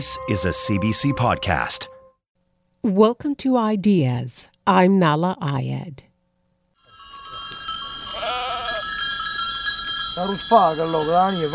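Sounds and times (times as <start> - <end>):
speech: 0.0 - 1.9, 2.8 - 6.1, 10.2 - 11.5
many small livestock bells jingling: 6.8 - 11.5
migrating herd of sheep or goats bleating: 8.1 - 8.9.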